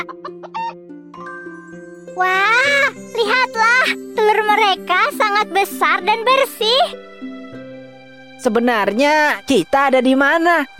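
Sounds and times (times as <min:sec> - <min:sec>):
chickens clucking in short repeated bursts: 0:00.0 - 0:00.8
speech: 0:02.2 - 0:02.6, 0:03.2 - 0:07.1, 0:08.4 - 0:10.7.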